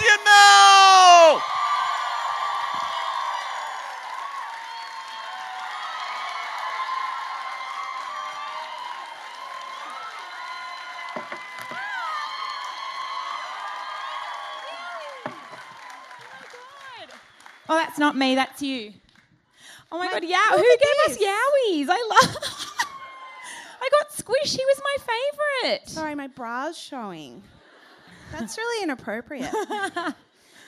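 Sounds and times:
large crowd cheering and whooping: 0.0 - 17.6, 22.5 - 23.7
speech: 18.0 - 19.0, 19.9 - 22.7, 24.2 - 27.6, 28.3 - 30.2.

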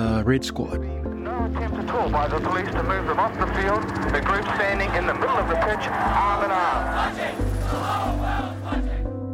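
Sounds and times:
speech: 0.2 - 8.1
large protest crowd chanting in unison at rugby match: 5.9 - 9.2.

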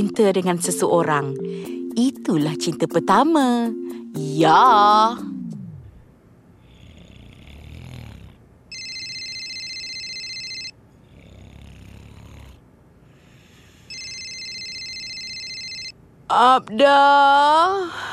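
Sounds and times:
speech: 0.0 - 5.4, 16.3 - 18.1
person snoring heavily: 6.6 - 8.4, 11.0 - 12.6
telephone ringing in long electronic bursts: 8.7 - 10.8, 13.9 - 16.0.

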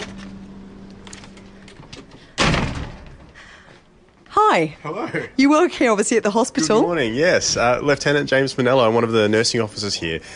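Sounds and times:
hospital side door slamming shut: 2.2 - 3.4
speech: 4.6 - 10.3.

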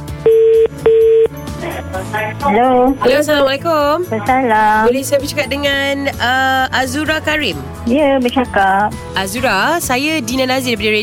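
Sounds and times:
soft music: 0.0 - 11.0
ringback tones of an outgoing phone call: 0.2 - 1.3
speech: 1.7 - 11.0.

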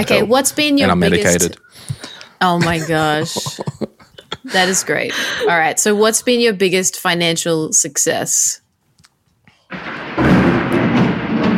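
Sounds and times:
laughter: 0.0 - 1.6, 2.4 - 5.7
speech: 0.0 - 3.8, 4.4 - 8.6
loud crack of thunder rolling into rumble: 9.7 - 11.5.

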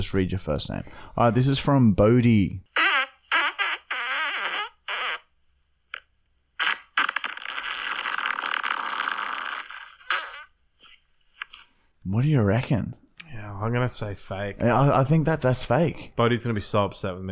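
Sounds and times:
speech: 0.0 - 2.7, 12.1 - 13.0, 13.6 - 17.3
recorded fart: 2.7 - 5.3, 6.6 - 10.9.

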